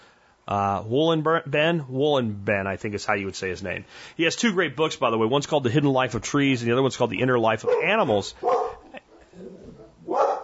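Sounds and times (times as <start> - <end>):
speech: 0.5 - 8.7
dogs barking: 7.6 - 10.4
dog yipping: 7.7 - 8.9, 9.6 - 10.4.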